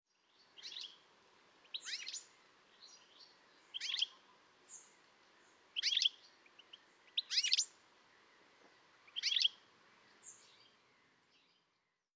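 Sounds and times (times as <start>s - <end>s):
steady low background hiss: 0.1s - 12.1s
Carduelis carduelis twittering calls: 0.6s - 1.0s, 1.6s - 10.7s.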